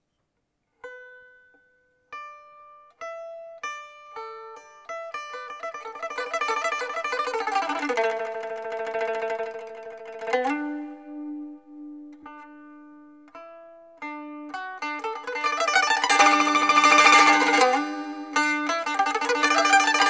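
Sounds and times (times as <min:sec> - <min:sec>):
liuqin playing: 0:05.4 - 0:12.7, 0:14.0 - 0:20.0.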